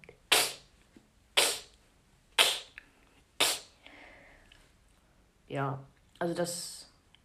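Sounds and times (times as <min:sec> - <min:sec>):
beatbox inward K snares inhaled through the cheeks: 0:00.3 - 0:00.7, 0:01.4 - 0:01.8, 0:02.4 - 0:02.8, 0:03.4 - 0:03.8
speech: 0:05.5 - 0:06.9.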